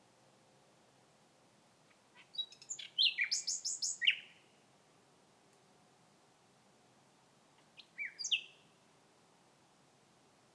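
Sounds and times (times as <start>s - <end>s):
common nightingale song: 1.7s - 4.8s, 7.5s - 9.0s.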